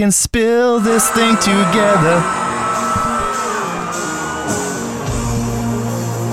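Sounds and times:
speech: 0.0s - 2.4s
rock singer screaming and wailing: 0.8s - 6.0s
loud dense distorted rock band music: 2.3s - 6.3s.

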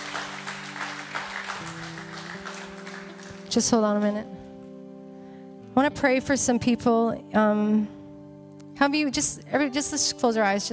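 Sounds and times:
sustained organ or keyboard chords: 0.0s - 3.7s
congregation clapping: 0.0s - 4.2s
speech: 3.5s - 4.4s, 5.8s - 8.0s, 8.8s - 10.7s.

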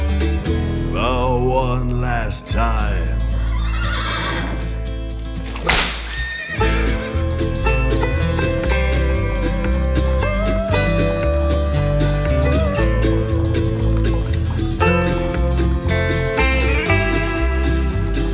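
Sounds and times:
steady instrumental music: 0.0s - 18.3s
speech: 1.6s - 3.2s
loud horse whinny: 3.5s - 4.8s, 6.0s - 6.7s
horse hooves galloping: 3.6s - 18.3s.

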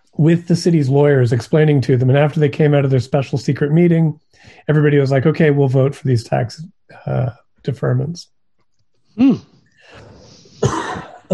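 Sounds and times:
speech: 0.1s - 8.3s, 9.2s - 11.3s
person coughing from allergy: 10.6s - 11.3s.

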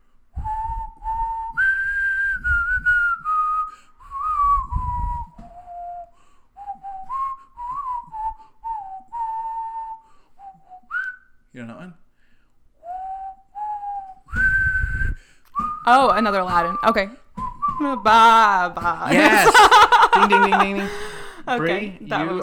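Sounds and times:
person whistling a song melody: 0.4s - 11.4s, 12.8s - 18.4s
speech: 15.9s - 17.2s, 17.8s - 22.4s
laughter: 18.8s - 22.4s.

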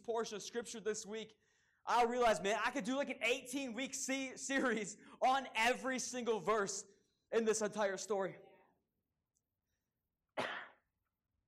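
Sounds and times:
speech: 0.1s - 8.5s
audience member coughing in a room: 10.4s - 10.9s.

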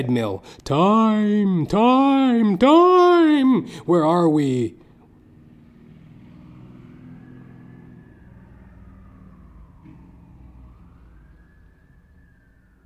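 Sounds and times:
speech: 0.0s - 4.8s
ambulance siren wailing: 0.0s - 12.8s
traffic noise: 0.0s - 12.8s
motorcycle engine passing: 3.6s - 12.8s.

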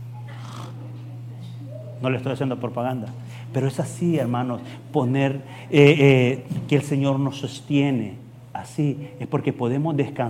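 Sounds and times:
voice imitating snoring: 0.3s - 0.8s
speech: 2.0s - 10.2s.

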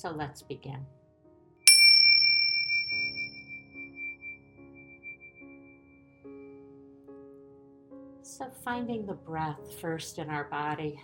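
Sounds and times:
speech: 0.0s - 1.0s, 8.3s - 11.0s
meditation bell chime struck: 1.7s - 6.2s.

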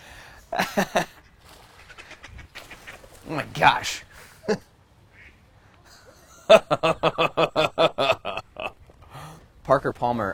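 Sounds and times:
outdoor noise: 0.0s - 10.3s
laughter: 0.5s - 1.2s, 5.9s - 8.8s
speech: 0.5s - 1.2s, 3.3s - 4.7s, 6.5s - 7.7s, 9.7s - 10.3s
gray duck quacking: 1.6s - 3.8s, 5.1s - 5.4s.

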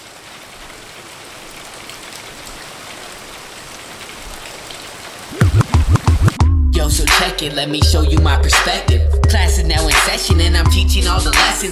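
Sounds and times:
steady rain patter: 0.0s - 6.4s
loud rising-and-falling synth or vocal-like tones: 5.3s - 6.5s
speech: 6.8s - 11.7s.

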